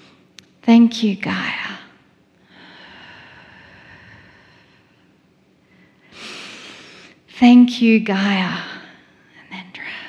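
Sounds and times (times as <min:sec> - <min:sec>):
speech: 0:00.7 - 0:01.6, 0:07.4 - 0:08.7
deep breaths during a guided standing grounding exercise: 0:02.4 - 0:07.2.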